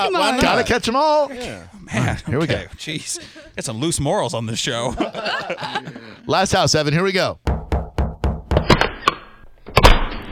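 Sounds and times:
laughter: 0:00.0 - 0:00.8, 0:01.9 - 0:03.6, 0:04.5 - 0:06.3
speech: 0:00.0 - 0:07.5
solid knocks on a door: 0:07.5 - 0:08.7.

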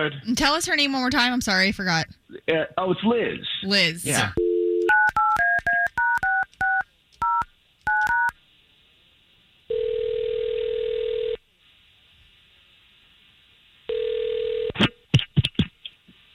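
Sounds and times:
speech: 0:00.0 - 0:04.4
telephone ringing tones: 0:04.4 - 0:08.3, 0:09.7 - 0:11.4, 0:13.9 - 0:14.8
telephone touch-tone dialing beeps: 0:04.4 - 0:08.3.

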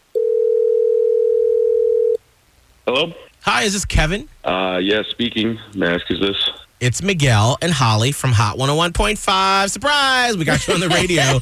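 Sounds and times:
telephone dial tone while placing a call: 0:00.2 - 0:02.2
speech: 0:02.9 - 0:11.4
laughter: 0:10.4 - 0:11.4.

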